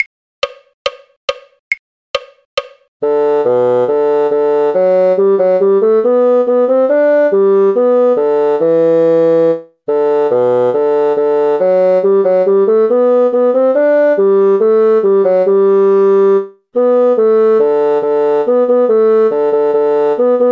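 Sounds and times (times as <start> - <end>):
bassoon: 3.0 - 20.4.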